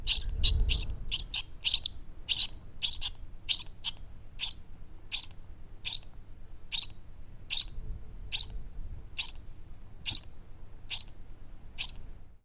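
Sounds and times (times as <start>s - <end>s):
soft low wind rumble: 0.0s - 3.5s, 7.1s - 12.4s
bird nestlings chirping in nest: 0.0s - 6.1s, 6.7s - 8.6s, 9.2s - 9.4s, 10.0s - 10.3s, 10.9s - 11.2s, 11.8s - 12.0s.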